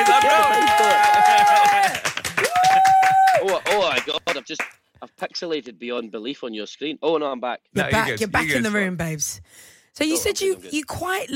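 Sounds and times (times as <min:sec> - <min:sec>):
voices whooping and cheering: 0:00.0 - 0:03.7
hosts clapping in a studio: 0:00.0 - 0:04.8
speech: 0:04.5 - 0:11.3.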